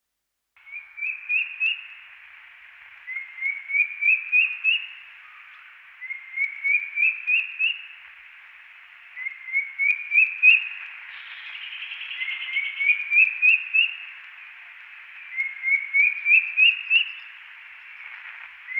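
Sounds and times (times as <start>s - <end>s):
drongo cuckoo calling: 0.6s - 8.1s, 9.0s - 18.7s.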